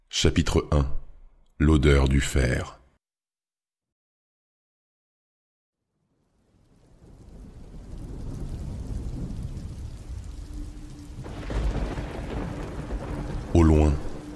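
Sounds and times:
speech: 0:00.2 - 0:01.0, 0:01.6 - 0:02.8
deep rolling thunder over a village at night: 0:06.4 - 0:14.3
heavy icy rain over a village on a starless night: 0:06.5 - 0:14.3.

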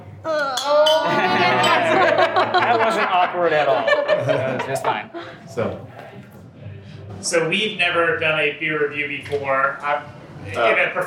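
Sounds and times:
beer glasses clinking in a toast: 0:00.6 - 0:02.2
laughter: 0:01.0 - 0:05.4
speech: 0:02.5 - 0:06.2, 0:07.2 - 0:11.0.

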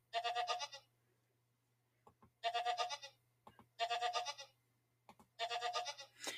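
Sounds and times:
goat bleating: 0:00.1 - 0:00.9, 0:02.4 - 0:03.2, 0:03.8 - 0:04.6, 0:05.4 - 0:06.2.

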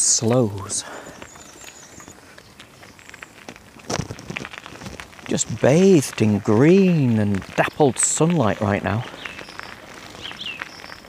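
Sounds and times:
speech: 0:00.2 - 0:01.3, 0:05.3 - 0:09.3
faint high bird chirps and short whistled notes: 0:00.5 - 0:03.4, 0:09.1 - 0:11.0.

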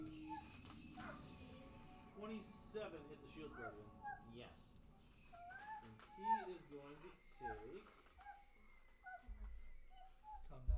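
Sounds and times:
dog whimpering with high-pitched whines: 0:00.0 - 0:01.3, 0:03.4 - 0:04.4, 0:05.3 - 0:10.6
speech: 0:02.2 - 0:04.8, 0:05.8 - 0:08.0.

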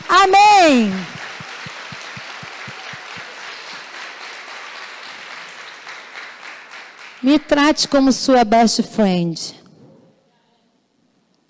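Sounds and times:
crowd applauding after a prayer: 0:00.0 - 0:07.6
speech: 0:07.4 - 0:09.6.

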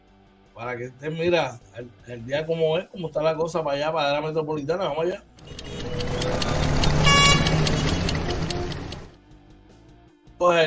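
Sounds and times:
speech: 0:00.6 - 0:06.6, 0:10.4 - 0:10.6
street traffic rumbling: 0:05.3 - 0:09.2
car horn blaring: 0:05.4 - 0:09.1.

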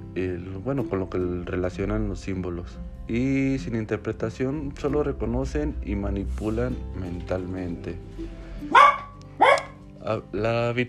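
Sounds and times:
speech: 0:00.2 - 0:08.8, 0:10.0 - 0:10.8
small dog barking: 0:08.7 - 0:09.8.

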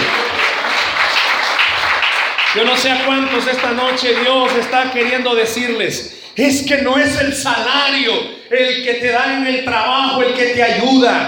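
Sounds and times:
audience applauding during a church service: 0:00.0 - 0:05.9
speech: 0:02.6 - 0:11.2.

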